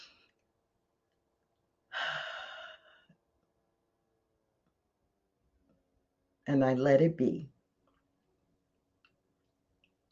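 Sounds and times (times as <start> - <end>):
faint breath: 1.9 - 3.2
speech: 6.5 - 7.5.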